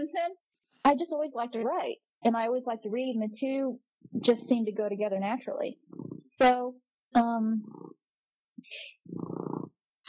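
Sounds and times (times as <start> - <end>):
speech: 0.9 - 5.8, 6.4 - 7.9
cat purring: 5.8 - 6.6, 7.5 - 8.1, 9.0 - 9.8.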